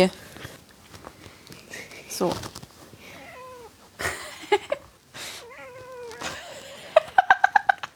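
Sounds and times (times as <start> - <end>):
speech: 0.0 - 0.2, 2.2 - 2.6
cat meowing: 3.1 - 3.8, 5.4 - 6.5
laughter: 6.2 - 7.9.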